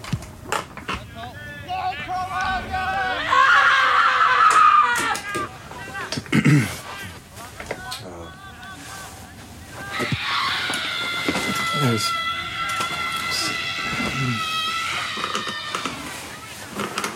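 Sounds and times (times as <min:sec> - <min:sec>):
high-pitched human scream: 0:02.4 - 0:05.5, 0:09.8 - 0:16.4
laughter: 0:02.5 - 0:07.1.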